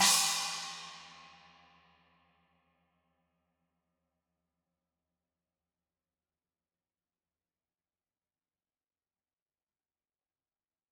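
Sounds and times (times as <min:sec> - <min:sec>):
china cymbal crash on the edge: 0:00.0 - 0:01.5.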